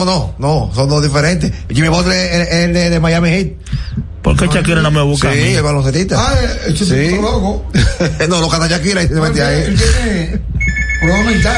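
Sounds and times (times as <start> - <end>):
speech: 0.0 - 11.5
telephone ringing with a high electronic tone: 10.6 - 11.5.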